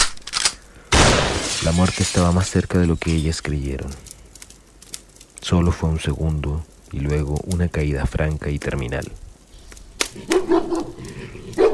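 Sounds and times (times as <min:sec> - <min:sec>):
speech: 0:01.6 - 0:04.1, 0:05.5 - 0:09.2, 0:10.1 - 0:11.0
dogs barking as they pounce on partridges during a hunt: 0:10.2 - 0:11.7.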